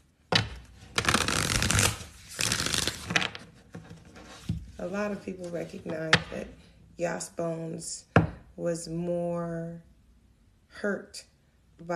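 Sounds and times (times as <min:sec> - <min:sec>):
tarot cards being shuffled: 0:00.3 - 0:04.6
speech: 0:04.8 - 0:09.9, 0:10.8 - 0:11.9.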